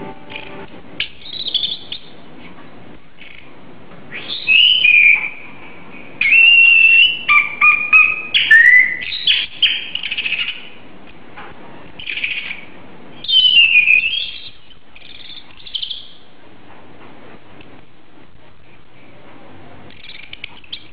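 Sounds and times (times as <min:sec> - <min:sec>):
Oriental magpie-robin singing loud clear whistled phrases: 0:01.0 - 0:02.1, 0:04.1 - 0:05.5, 0:06.2 - 0:10.8, 0:12.0 - 0:12.6, 0:13.2 - 0:16.2.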